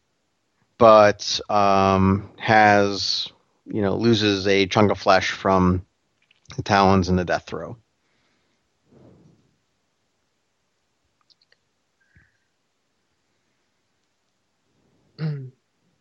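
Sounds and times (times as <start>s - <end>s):
speech: 0.8s - 5.9s, 6.5s - 7.8s
small clicks: 6.1s - 6.6s, 11.2s - 12.3s
man clearing throat: 15.2s - 15.5s.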